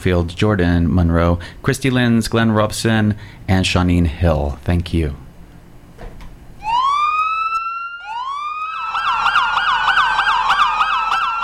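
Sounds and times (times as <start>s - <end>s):
speech: 0.0s - 5.2s
emergency siren wailing and yelping: 6.6s - 11.4s.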